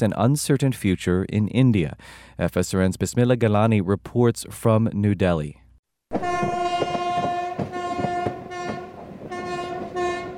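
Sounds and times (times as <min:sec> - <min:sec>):
speech: 0:00.0 - 0:06.9
train horn blaring: 0:06.1 - 0:10.3
train wheels clacking on rail joints: 0:06.1 - 0:10.3.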